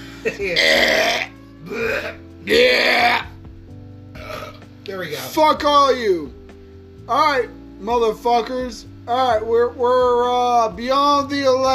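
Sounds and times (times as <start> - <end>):
speech: 0.2 - 3.2, 5.0 - 6.4, 7.1 - 11.7
loud drawn-out belch: 0.6 - 3.4, 4.2 - 4.6.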